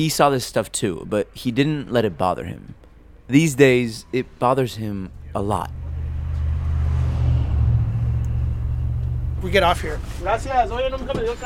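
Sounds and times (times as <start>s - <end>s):
speech: 0.0s - 5.8s, 9.4s - 11.4s
constant broadband road noise: 0.8s - 11.4s
bus engine rumbling: 3.6s - 11.4s.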